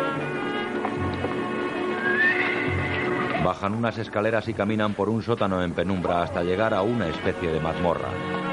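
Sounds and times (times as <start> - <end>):
soft horse hoof clops: 0.1 - 3.7
horse whinnying in the stables: 1.9 - 3.5
speech: 3.5 - 8.4.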